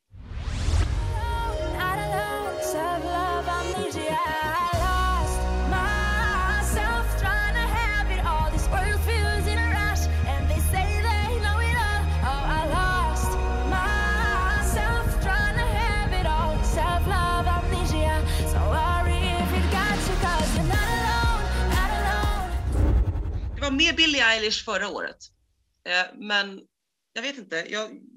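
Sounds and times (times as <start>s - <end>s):
moody club-pop track: 1.0s - 22.9s
deep pulsing bass line: 4.8s - 23.7s
speech: 24.3s - 28.1s.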